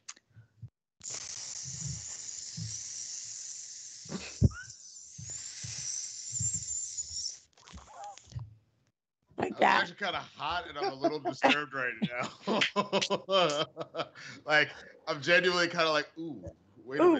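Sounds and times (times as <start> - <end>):
voice imitating a hissing snake: 1.0 - 8.2
laughter: 9.4 - 16.1
speech: 9.9 - 17.1.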